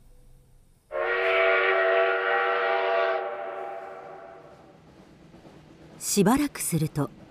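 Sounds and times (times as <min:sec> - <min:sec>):
steam train whistle blast pulling away from the station: 0:00.9 - 0:04.6
speech: 0:06.2 - 0:07.2.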